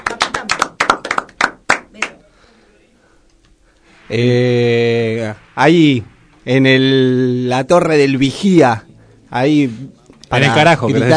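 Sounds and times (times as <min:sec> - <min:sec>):
small group of people clapping: 0:00.0 - 0:02.2
speech: 0:04.1 - 0:11.1.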